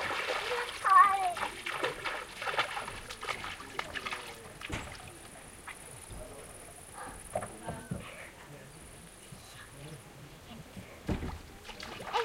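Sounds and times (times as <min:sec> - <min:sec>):
water splashing as a foot steps into cold water: 0:00.0 - 0:06.1, 0:11.1 - 0:12.2
voices murmuring: 0:00.4 - 0:12.2.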